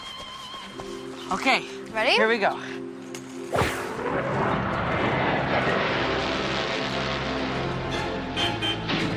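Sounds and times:
speech: 1.3s - 2.8s
airplane engine roar flying past: 3.8s - 9.0s.

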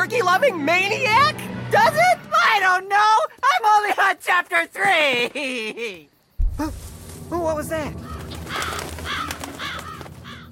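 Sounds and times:
speech: 0.2s - 8.1s
crows cawing: 8.0s - 10.4s.

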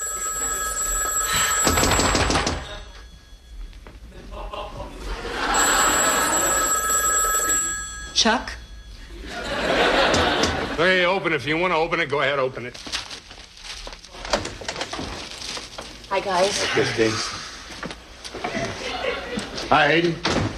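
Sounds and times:
old-style telephone bell ringing: 0.0s - 10.7s
people chuckling: 4.0s - 6.6s, 9.1s - 10.8s, 18.3s - 19.7s
speech: 8.2s - 8.6s, 10.8s - 13.0s, 16.2s - 17.4s, 19.7s - 20.3s.

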